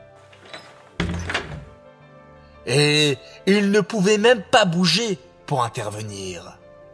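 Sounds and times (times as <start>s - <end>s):
door shutting with a solid thunk: 0.1s - 1.8s
speech: 2.6s - 6.6s.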